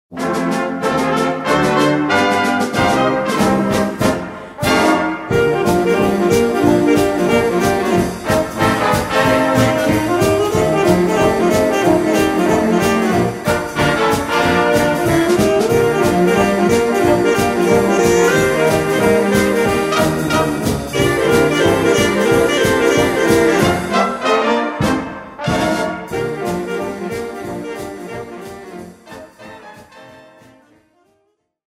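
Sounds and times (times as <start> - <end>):
saxophone swing music: 0.1 - 31.2.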